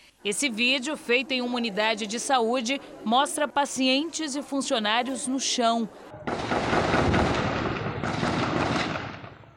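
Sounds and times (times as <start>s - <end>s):
speech: 0.2s - 6.6s
dense continuous gunfire during a shootout: 6.3s - 9.5s.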